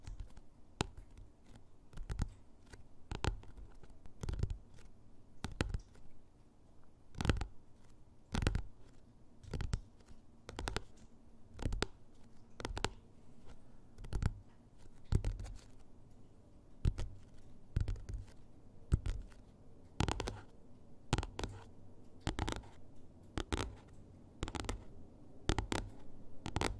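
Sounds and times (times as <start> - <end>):
fingernails and finger pads tapping on objects: 0.0 - 6.2, 7.1 - 15.8, 16.8 - 20.5, 21.1 - 24.9, 25.5 - 26.7
faint low hum: 0.0 - 26.7.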